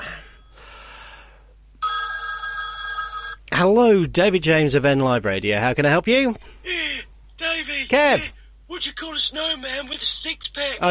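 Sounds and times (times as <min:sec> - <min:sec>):
telephone ringing loudly with an electronic ring: 0:01.8 - 0:03.4
speech: 0:03.6 - 0:06.8, 0:07.9 - 0:10.8.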